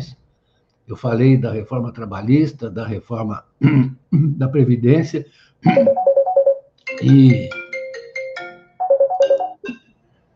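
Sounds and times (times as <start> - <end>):
speech: 0.9 - 6.1, 7.0 - 7.6
phone ringtone bright electronic melody: 5.8 - 9.7.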